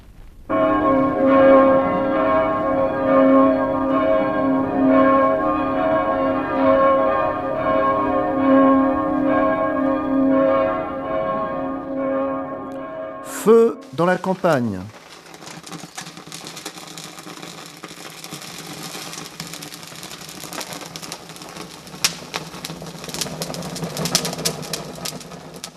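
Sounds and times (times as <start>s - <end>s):
church bells ringing: 0.5s - 14.8s
speech: 14.2s - 15.0s.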